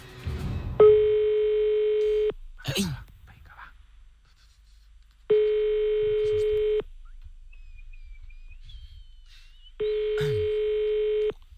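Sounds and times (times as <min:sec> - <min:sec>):
buzzy telephone ringback tones: 0:00.8 - 0:02.3, 0:05.3 - 0:06.9, 0:09.8 - 0:11.3.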